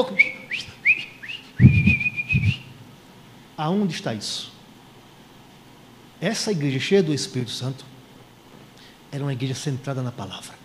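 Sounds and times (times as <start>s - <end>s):
speech: 0.0s - 0.4s, 3.6s - 4.6s, 6.2s - 8.0s, 9.1s - 10.6s
person whistling: 0.0s - 2.7s
low thumping: 1.6s - 2.7s.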